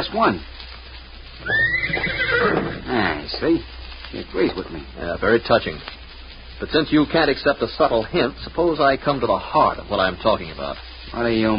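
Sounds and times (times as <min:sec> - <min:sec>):
speech: 0:00.0 - 0:00.6, 0:01.4 - 0:06.0, 0:06.6 - 0:11.5
horse neighing: 0:01.4 - 0:03.0.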